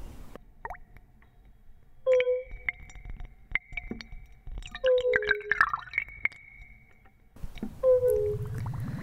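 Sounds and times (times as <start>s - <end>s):
watery plops and drips: 2.1s - 8.8s.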